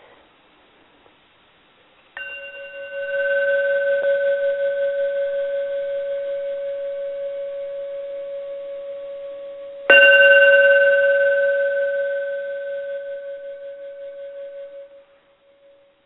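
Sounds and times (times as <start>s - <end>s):
handmade bell struck and ringing: 2.2s - 15.0s.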